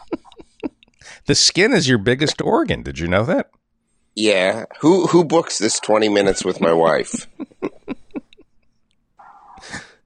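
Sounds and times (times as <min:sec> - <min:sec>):
laughter: 0:00.0 - 0:00.8, 0:05.2 - 0:08.7
speech: 0:01.2 - 0:03.6, 0:04.2 - 0:07.6
dog whining: 0:09.2 - 0:09.8.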